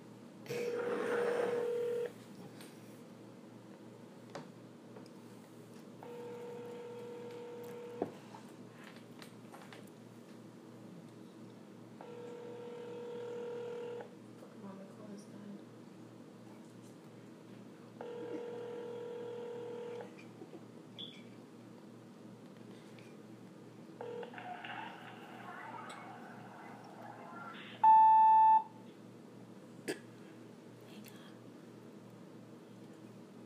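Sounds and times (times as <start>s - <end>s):
low hum: 0.0s - 33.4s
phone dialing tones: 0.7s - 2.1s, 6.0s - 8.0s, 18.0s - 20.1s, 24.0s - 26.2s, 27.5s - 28.7s
voicemail electronic beep: 27.4s - 28.7s
outgoing call ringback tone: 27.8s - 28.7s.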